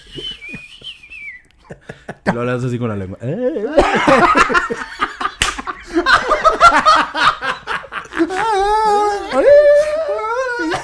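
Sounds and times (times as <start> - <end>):
person whistling a sustained wavering note: 0.0 - 1.6
speech: 2.3 - 5.0
laughter: 3.6 - 10.8.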